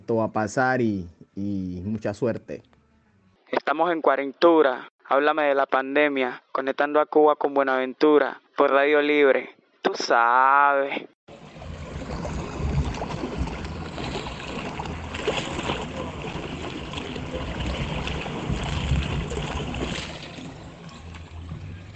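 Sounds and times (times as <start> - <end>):
speech: 0.1 - 2.8, 3.6 - 11.1
sea water washing against a small pier in Buenaventura: 11.3 - 21.9.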